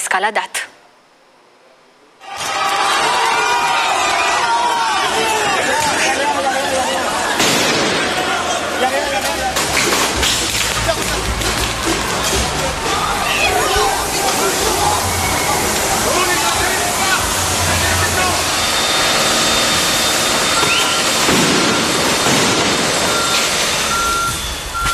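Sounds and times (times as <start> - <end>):
speech: 0.1 - 0.8
street protest crowd shouting: 2.2 - 21.3
sharp bang: 7.4 - 8.2, 20.6 - 23.3
police water cannon spraying a crowd: 9.6 - 24.7.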